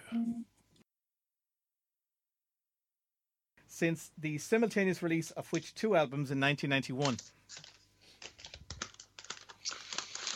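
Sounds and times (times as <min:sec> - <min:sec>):
speech: 0:03.8 - 0:07.7
paper crinkling and rustling in a studio: 0:07.0 - 0:10.3.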